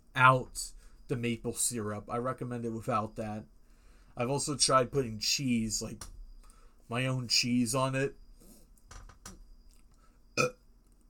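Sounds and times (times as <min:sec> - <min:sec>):
speech: 0:00.2 - 0:03.6, 0:04.2 - 0:06.2, 0:06.9 - 0:08.2, 0:10.4 - 0:10.6
loud burp into the microphone: 0:10.4 - 0:10.6.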